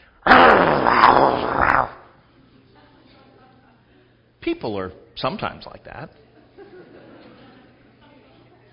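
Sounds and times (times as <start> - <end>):
person imitating a snarling dog growl: 0.2 - 2.1
speech: 4.4 - 6.3
laughter: 6.2 - 8.7.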